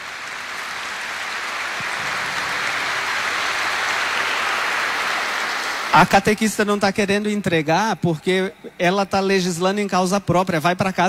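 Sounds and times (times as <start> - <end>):
audience clapping for children: 0.0 - 6.9
speech: 5.9 - 11.0.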